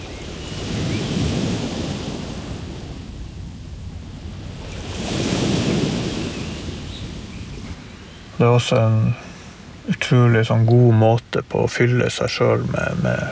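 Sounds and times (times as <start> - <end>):
wind rushing over the shore: 0.0 - 8.4
waves surging and crashing against rocks: 0.0 - 9.8, 12.6 - 13.3
speech: 8.4 - 9.2, 9.9 - 13.3.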